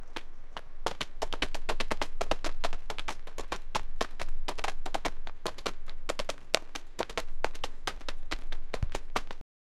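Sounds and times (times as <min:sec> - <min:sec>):
multiple people jogging: 0:00.0 - 0:09.4.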